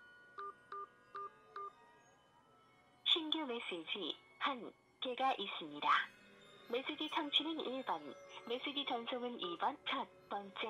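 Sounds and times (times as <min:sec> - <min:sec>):
mobile phone keypad dialing tones: 0:00.4 - 0:01.7
speech: 0:03.5 - 0:10.6.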